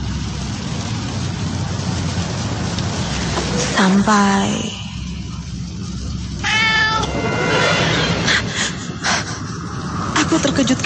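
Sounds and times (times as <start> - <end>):
steady rumbling noise: 0.0 - 10.8
speech: 3.8 - 4.8, 10.3 - 10.8
kitten meowing: 6.4 - 7.1.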